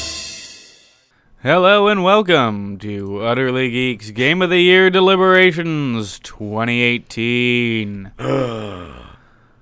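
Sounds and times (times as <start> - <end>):
speech: 1.4 - 9.0
person gasping: 7.7 - 9.6.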